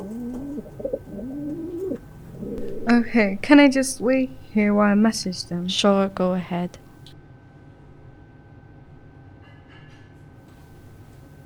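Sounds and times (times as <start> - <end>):
pigeons cooing: 0.0 - 7.0
speech: 2.9 - 6.8.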